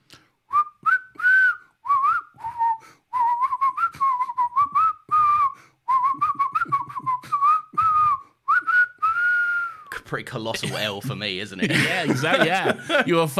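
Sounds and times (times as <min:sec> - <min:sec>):
person whistling a lively theme song: 0:00.5 - 0:09.9
speech: 0:10.1 - 0:13.3
laughter: 0:10.6 - 0:13.3.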